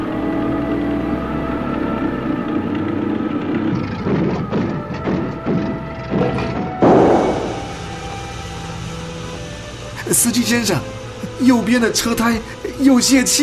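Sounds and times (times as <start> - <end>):
open-top cargo truck engine drone on a rough road: 0.0 - 13.4
open-top cargo truck thudding and clattering over bumps on a rough road: 3.2 - 8.2
speech: 10.1 - 13.4.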